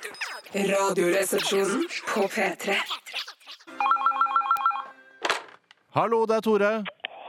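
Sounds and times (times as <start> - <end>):
speech: 0.1 - 3.2, 6.0 - 7.0
telephone ringing with electronic warbling trill: 3.7 - 5.2.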